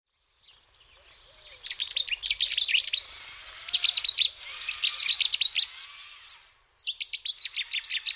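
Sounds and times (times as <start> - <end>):
Cetti's warbler song bursts: 0.2 - 8.1.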